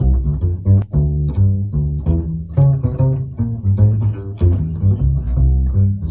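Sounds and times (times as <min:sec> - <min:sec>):
jazz bass playing melodic samples: 0:00.0 - 0:06.0.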